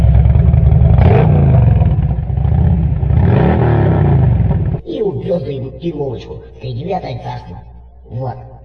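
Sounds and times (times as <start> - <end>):
motorcycle engine revving: 0.0 - 4.8
speech: 5.9 - 8.5.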